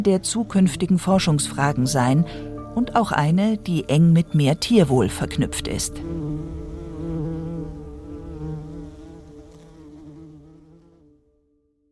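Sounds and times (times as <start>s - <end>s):
speech: 0.0s - 6.2s
bumblebee buzzing: 5.4s - 11.2s.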